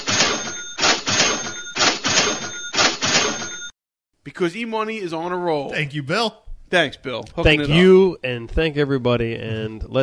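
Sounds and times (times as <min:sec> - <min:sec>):
cash register cha-ching sound effects: 0:00.0 - 0:03.7
speech: 0:04.2 - 0:10.0.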